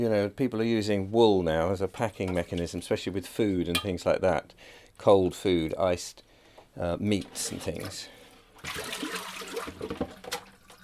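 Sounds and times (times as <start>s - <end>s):
speech: 0.0s - 9.2s, 9.8s - 10.2s
hot boiling water pouring onto a label: 7.3s - 10.8s.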